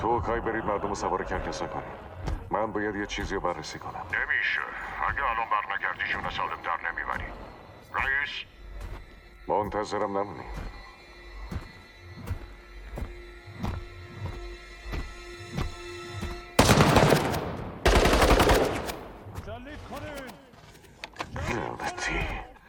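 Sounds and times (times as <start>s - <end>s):
speech: 0.0s - 8.9s, 9.5s - 10.8s, 21.5s - 22.4s
gunshots: 16.6s - 19.3s.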